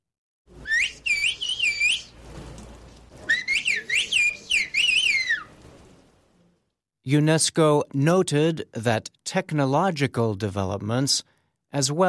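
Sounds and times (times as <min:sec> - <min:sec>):
whistled bird language used to communicate in a mountainous area of Turkey: 0:00.6 - 0:02.2, 0:03.2 - 0:05.6
speech: 0:07.1 - 0:12.0.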